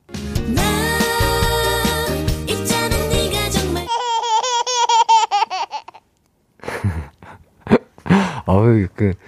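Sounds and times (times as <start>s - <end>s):
music: 0.0s - 3.9s
baby laughing: 3.8s - 6.0s
speech: 8.6s - 9.2s.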